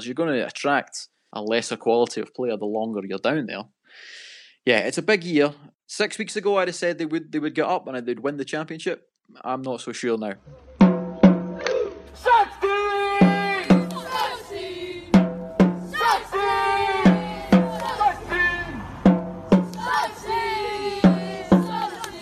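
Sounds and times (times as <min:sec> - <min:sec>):
speech: 0:00.0 - 0:10.7
young football fans chanting: 0:11.6 - 0:22.2
sharp regular hits: 0:13.1 - 0:14.4, 0:15.2 - 0:18.1, 0:19.0 - 0:22.2.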